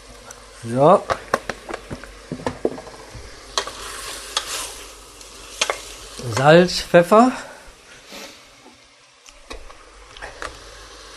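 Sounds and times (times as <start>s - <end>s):
roast gravy sizzling in a pan: 0.0s - 11.1s
speech: 0.6s - 1.2s, 6.4s - 7.5s
spoon stirring roast gravy with milk in a pan: 3.5s - 4.8s.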